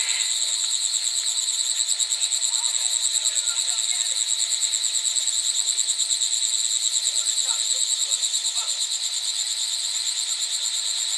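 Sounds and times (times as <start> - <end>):
chorus of several cicadas buzzing in China: 0.0 - 11.1.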